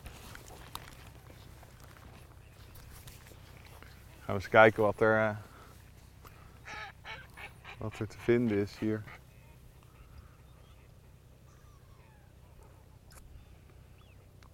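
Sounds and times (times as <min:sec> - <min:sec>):
man speaking quietly: 0:04.0 - 0:05.6, 0:07.6 - 0:11.3
speech: 0:04.3 - 0:05.5, 0:07.8 - 0:09.2
flock of Eurasian wigeon honking and whistling calls: 0:06.3 - 0:12.4.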